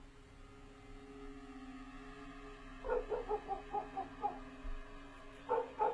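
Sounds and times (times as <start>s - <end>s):
steady low hum: 0.0s - 5.9s
black dog barking in a yard: 2.8s - 4.4s, 5.5s - 5.9s.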